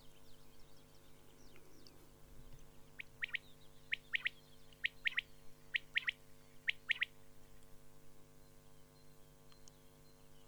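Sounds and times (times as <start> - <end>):
common quail calling in three-note bursts: 3.0 - 7.1.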